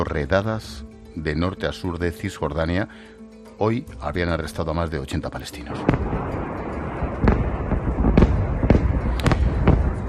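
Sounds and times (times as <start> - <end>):
speech: 0.0 - 6.4
rocket attack explosions intercepted by missile defence system: 5.7 - 10.0.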